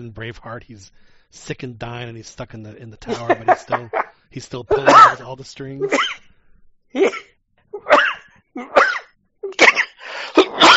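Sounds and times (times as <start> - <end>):
speech: 0.0 - 6.2, 6.9 - 7.3
laughter: 3.0 - 4.1
loud coughing fit of harsh raspy coughs: 3.0 - 6.3, 7.0 - 10.7.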